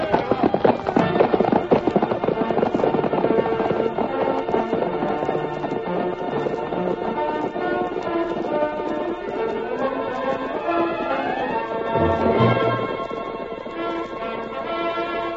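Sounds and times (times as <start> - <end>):
cavalry horses galloping across an open plain: 0.0 - 15.3
loud sweeping orchestral music: 7.3 - 15.3.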